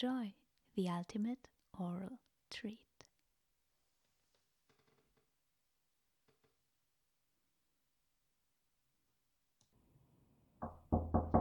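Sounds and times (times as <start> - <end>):
speech: 0.0 - 2.9
knocking on a door: 10.6 - 11.3.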